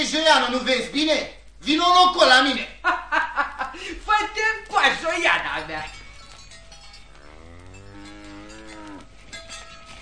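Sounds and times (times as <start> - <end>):
speech: 0.2 - 6.0
laughter: 2.7 - 4.1
faint clanking bell: 5.5 - 10.0
cow mooing: 7.2 - 9.2.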